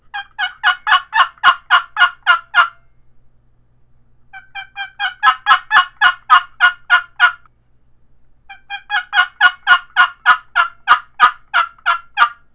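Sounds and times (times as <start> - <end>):
poplar cherry box call turkey yelps: 0.1 - 2.8, 4.3 - 7.5, 8.5 - 12.5.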